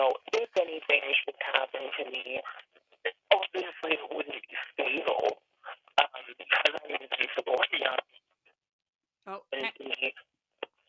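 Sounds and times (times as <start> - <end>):
voice over a phone line breaking up into choppy fragments: 0.0 - 8.0, 9.4 - 10.2.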